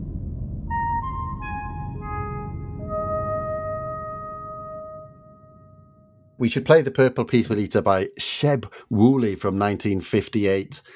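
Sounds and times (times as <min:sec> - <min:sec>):
steady low rumble: 0:00.0 - 0:06.4
five-note sequence of pure sustained tones: 0:00.7 - 0:06.4
speech: 0:06.4 - 0:10.9.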